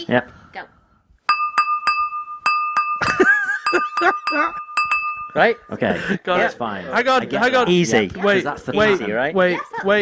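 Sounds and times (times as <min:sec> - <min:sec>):
speech: 0:00.0 - 0:00.7, 0:04.0 - 0:04.7, 0:05.3 - 0:09.9
spatula tapping a glass to play a tune: 0:01.3 - 0:05.5.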